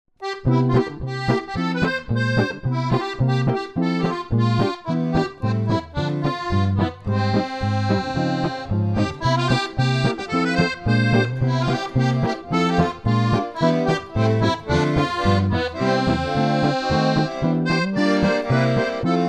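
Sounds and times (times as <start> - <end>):
accordion: 0.2 - 19.2.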